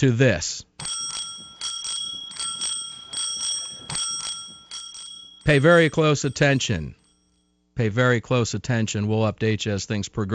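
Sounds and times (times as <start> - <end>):
speech: 0.0 - 0.9, 5.5 - 7.0, 7.8 - 10.3
small bell ringing: 0.8 - 7.6.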